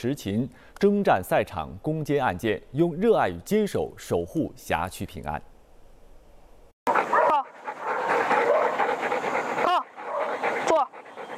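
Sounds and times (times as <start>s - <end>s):
speech: 0.0s - 5.5s
police dogs barking and yelping in training: 6.9s - 11.3s.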